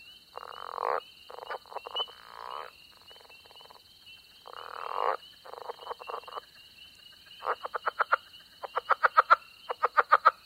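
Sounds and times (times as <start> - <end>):
spring peepers chorus at a small pond in Mississippi: 0.0 - 10.4.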